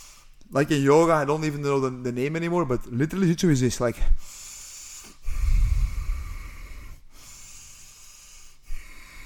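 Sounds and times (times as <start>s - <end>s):
brief sniff: 0.0s - 0.4s, 4.2s - 9.2s
speech: 0.5s - 4.4s
demonstrated deep belly breathing: 4.1s - 9.2s.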